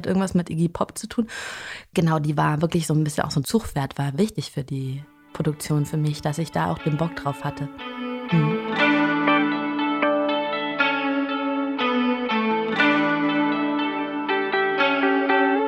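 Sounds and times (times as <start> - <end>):
speech: 0.0 - 8.8
three layered electric guitar parts recorded with a loop station with chorus and echo: 7.7 - 15.6.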